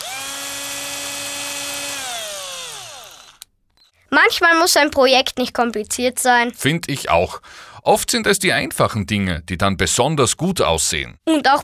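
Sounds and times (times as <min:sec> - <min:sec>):
cordless drill driving screws through fender washers: 0:00.0 - 0:03.5
speech: 0:04.2 - 0:11.6.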